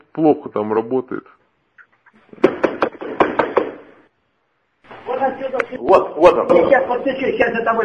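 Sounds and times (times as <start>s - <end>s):
speech: 0.2s - 1.4s, 5.2s - 7.8s
knocking on a door: 2.4s - 3.9s.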